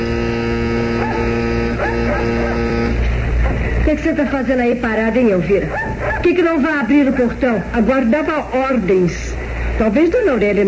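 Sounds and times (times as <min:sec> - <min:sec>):
steady low electrical hum: 0:00.0 - 0:10.6
dogs barking: 0:00.8 - 0:03.6, 0:05.5 - 0:06.6
speech: 0:03.9 - 0:10.6.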